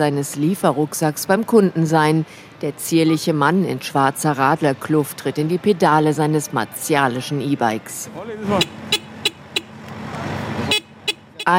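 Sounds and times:
speech: 0.0s - 9.0s
busy street traffic engines rumbling in Midtown Manhattan: 0.0s - 11.5s
car horn honks in Midtown Manhattan traffic: 8.4s - 9.8s, 10.6s - 11.5s.

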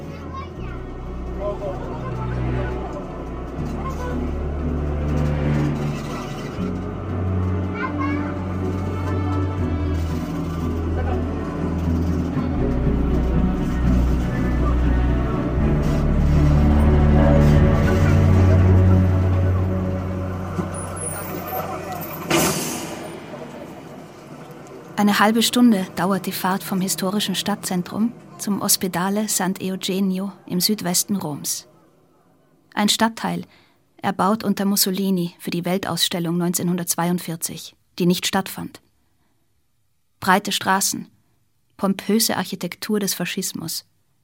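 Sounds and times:
children's voices on a bus: 0.0s - 4.4s, 7.6s - 10.0s
bus passengers chattering: 0.0s - 4.7s, 7.8s - 32.4s
city bus engine droning in Rome: 0.0s - 30.8s
city bus air brakes hissing: 20.8s - 23.4s
speech: 25.0s - 31.7s, 32.8s - 38.8s, 40.2s - 41.1s, 41.8s - 43.9s.

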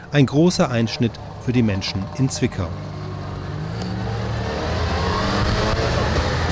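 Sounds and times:
speech: 0.1s - 3.0s
Trabant two-stroke engine of a small two-door car revving: 0.8s - 6.4s.

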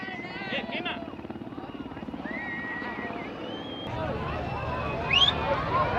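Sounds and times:
demonstrators babbling: 0.0s - 5.9s
helicopter droning overhead dropping gas grenades over a protest: 0.0s - 5.9s
sharp high whistling sounds: 2.2s - 5.5s.

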